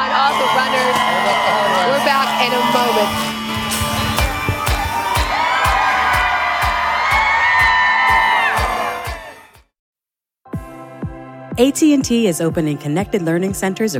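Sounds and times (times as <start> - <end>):
people clapping: 0.0 - 2.0, 3.5 - 9.6
people yelling: 0.0 - 9.6
studio crowd cheering and whooping: 0.0 - 9.6
speech: 2.4 - 3.2, 11.6 - 13.9.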